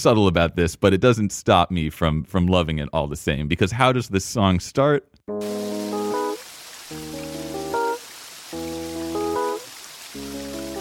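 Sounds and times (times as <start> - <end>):
speech: 0.0 - 5.8
rain: 5.4 - 10.7
running water: 5.4 - 10.7.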